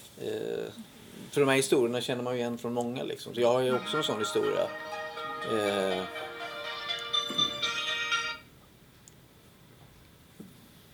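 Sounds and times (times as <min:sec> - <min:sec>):
speech: 0:00.2 - 0:06.2
smartphone ringtone playing a melodic tune: 0:03.7 - 0:08.4.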